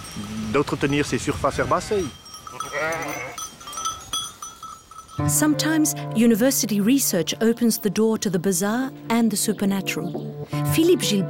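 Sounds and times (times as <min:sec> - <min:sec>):
speech: 0:00.2 - 0:03.3, 0:05.2 - 0:11.2
sheep kept at a university to graze grass bleating: 0:02.5 - 0:03.4.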